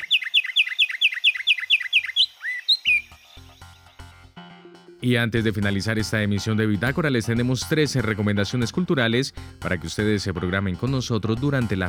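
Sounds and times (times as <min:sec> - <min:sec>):
Colombian finch singing chirping notes and warbled phrases: 0:00.0 - 0:04.1
speech: 0:05.0 - 0:11.8.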